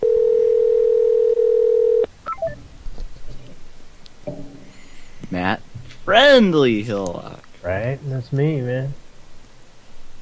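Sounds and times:
telephone line tone on an outgoing call: 0:00.0 - 0:02.6
speech: 0:06.2 - 0:09.0.

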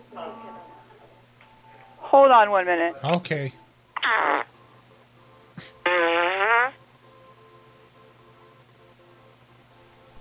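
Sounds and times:
speech: 0:02.3 - 0:04.4
man farting heard over the phone: 0:04.0 - 0:04.5, 0:05.6 - 0:06.8.

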